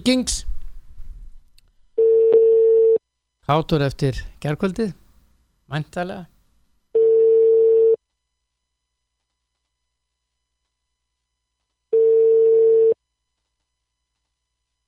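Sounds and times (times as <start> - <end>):
speech: 0.0 - 0.5, 3.5 - 5.0, 5.7 - 6.3
unanswered telephone call ringing: 2.0 - 3.0, 7.0 - 8.0, 11.9 - 13.0.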